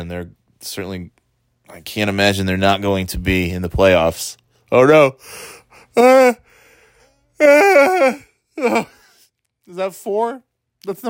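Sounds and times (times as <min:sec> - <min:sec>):
speech: 0:00.0 - 0:06.5, 0:07.4 - 0:09.0, 0:09.7 - 0:11.0
person yawning with moaning voice: 0:05.8 - 0:09.2.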